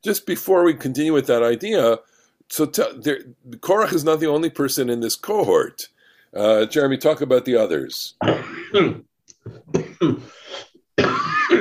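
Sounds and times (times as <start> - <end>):
speech: 0.0 - 11.3
harsh coughs and rasping cough: 8.2 - 11.5
throat clearing: 8.2 - 11.5.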